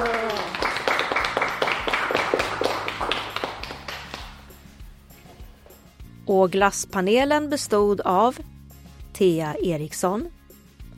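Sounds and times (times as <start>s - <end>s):
small group clapping hands: 0.0s - 4.8s
speech: 6.3s - 8.5s, 9.2s - 10.4s.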